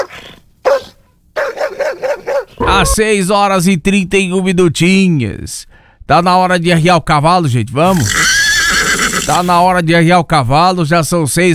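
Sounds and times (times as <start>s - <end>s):
dog barking: 0.0s - 3.0s
speech: 2.8s - 8.4s, 9.3s - 11.5s.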